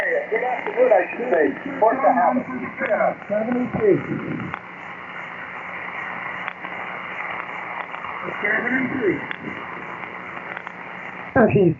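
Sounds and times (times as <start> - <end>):
faint garbled voice on a ham radio check-in transmission: 0.0 - 4.6, 8.2 - 9.7
heavy static hiss on a ham radio: 0.0 - 11.7
speech: 1.0 - 4.5, 8.2 - 9.7, 11.4 - 11.7.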